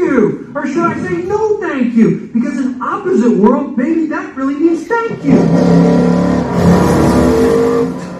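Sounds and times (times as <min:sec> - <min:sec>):
speech: 0:00.2 - 0:07.7
car engine revving: 0:05.1 - 0:08.1.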